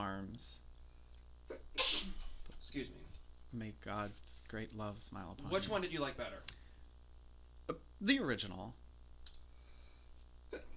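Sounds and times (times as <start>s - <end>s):
low steady hum: 0.0s - 10.7s
speech: 0.4s - 0.6s, 2.8s - 6.6s, 7.7s - 8.8s
person sneezing: 1.5s - 2.3s, 10.5s - 10.7s.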